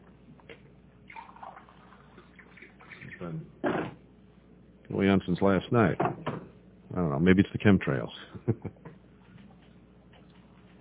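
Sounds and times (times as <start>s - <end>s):
water pouring into a glass: 1.1s - 3.2s
speech: 3.2s - 3.6s, 5.1s - 6.2s, 7.0s - 8.8s.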